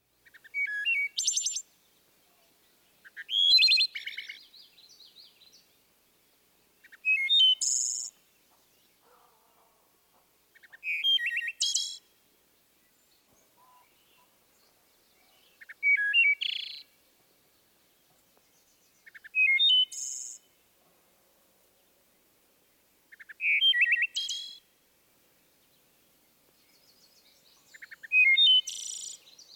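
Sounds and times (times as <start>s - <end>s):
wood thrush singing flute-like song: 0.1s - 9.1s, 10.5s - 20.8s, 22.7s - 24.7s, 25.3s - 29.5s.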